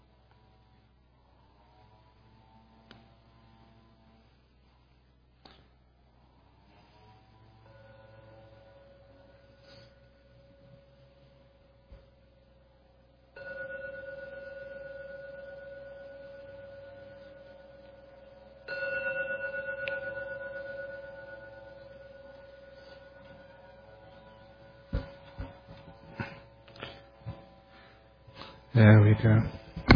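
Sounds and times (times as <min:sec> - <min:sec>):
gong struck and ringing: 0:07.5 - 0:11.9, 0:13.3 - 0:29.0
speech: 0:28.8 - 0:29.6.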